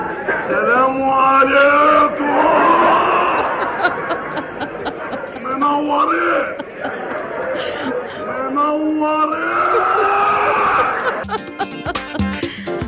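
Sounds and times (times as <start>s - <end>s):
noisy theatre crowd: 0.0s - 12.1s
laughter: 1.4s - 12.8s
man screaming in a stage play: 2.2s - 3.6s, 8.2s - 11.2s.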